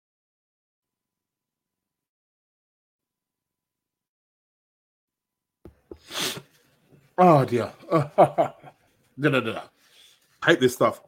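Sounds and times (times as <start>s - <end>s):
person sneezing: 5.9s - 6.5s
speech: 7.2s - 9.7s, 10.4s - 11.0s
laughter: 7.8s - 8.8s.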